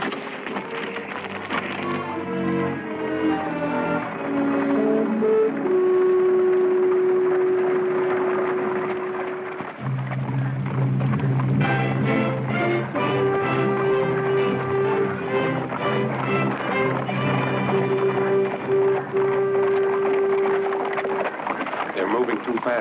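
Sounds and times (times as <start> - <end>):
horses' hooves trotting: 0.0 - 22.7
sustained droning tone: 0.8 - 21.9.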